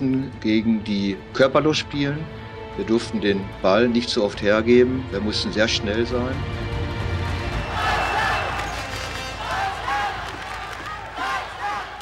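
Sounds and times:
speech: 0.0 - 6.7
arena spectators shouting and cheering in a packed indoor hall in Wiesbaden: 7.3 - 12.0.

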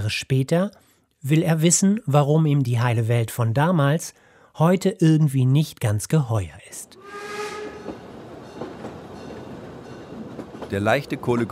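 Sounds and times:
speech: 0.1 - 7.4, 10.7 - 11.4
train rumbling at a station: 7.0 - 11.4.

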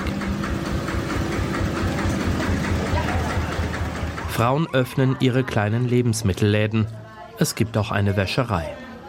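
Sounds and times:
tractor engine chugging on a village gravel road: 0.0 - 5.3
speech: 4.4 - 8.8.

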